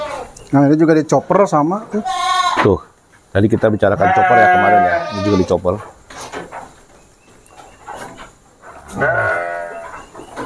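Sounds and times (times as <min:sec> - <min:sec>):
Dorper sheep bleating in a pen after giving birth: 0:00.0 - 0:00.3, 0:02.0 - 0:02.6, 0:04.0 - 0:05.6, 0:08.9 - 0:09.9
speech: 0:00.5 - 0:06.0.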